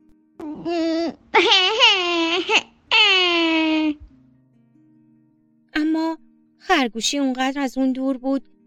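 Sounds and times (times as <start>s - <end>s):
loud drawn-out wailing sobbing cries: 0.4s - 4.0s
speech: 0.6s - 1.8s, 6.8s - 8.6s.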